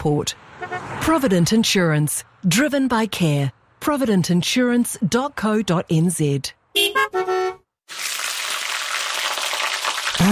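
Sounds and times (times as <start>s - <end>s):
speech: 0.0s - 7.6s
short honk-like tones: 6.8s - 7.6s
steak sizzling in a frying pan: 7.9s - 10.2s.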